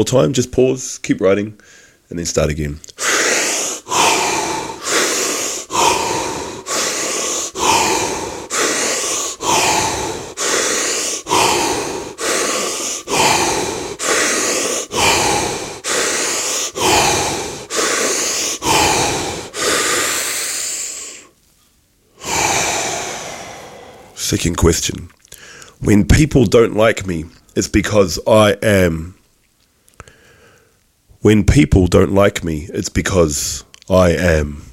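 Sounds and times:
speech: 0.0s - 3.1s, 24.4s - 25.2s, 25.8s - 29.2s, 31.2s - 34.7s
deep rhythmic breathing during a guided breathing exercise: 2.8s - 21.4s, 22.1s - 25.8s.

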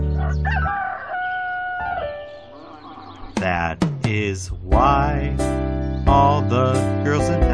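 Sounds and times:
rooster crowing cock-a-doodle-doo: 0.2s - 3.2s
speech: 3.4s - 7.4s.

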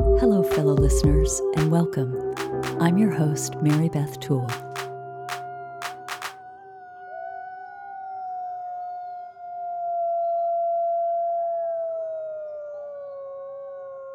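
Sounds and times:
speech: 0.2s - 4.7s
wolves howling: 6.4s - 14.1s.

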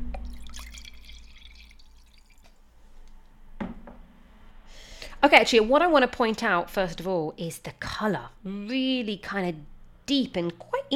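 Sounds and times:
red Marselan wine pouring into a glass: 0.2s - 2.5s
speech: 5.2s - 10.9s.

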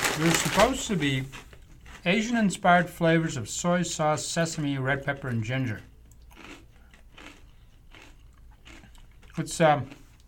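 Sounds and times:
crunches from a bite of a kettle-cooked potato chip: 0.0s - 2.3s, 6.1s - 10.2s
speech: 0.2s - 1.4s, 2.0s - 5.9s, 9.4s - 10.0s.

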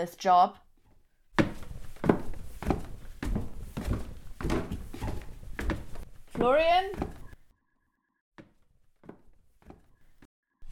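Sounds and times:
speech: 0.0s - 0.6s, 6.4s - 7.2s
heavy footsteps at a walking pace: 0.8s - 7.4s, 8.4s - 10.3s.

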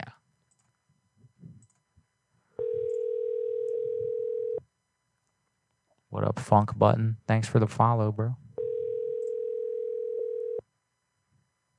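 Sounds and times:
telephone tone while calling a number: 2.6s - 4.6s, 8.6s - 10.6s
speech: 6.2s - 8.4s.

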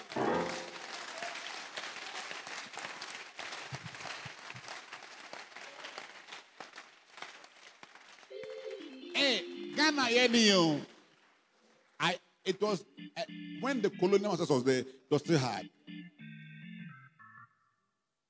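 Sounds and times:
audience clapping and applauding: 0.0s - 11.5s
speech: 9.4s - 10.9s, 12.0s - 15.8s.

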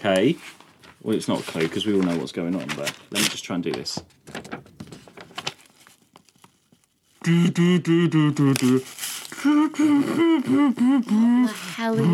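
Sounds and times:
speech: 0.0s - 4.6s, 7.2s - 12.1s
paper crinkling: 0.1s - 7.2s, 8.5s - 9.8s
person vocalising a bouncy rhythmic melody: 7.2s - 12.1s.

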